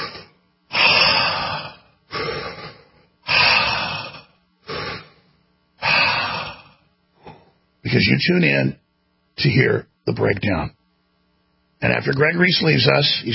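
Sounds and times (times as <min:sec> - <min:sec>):
deep breathing: 0:00.0 - 0:07.6
speech: 0:07.9 - 0:08.8, 0:09.4 - 0:10.8, 0:11.8 - 0:13.3.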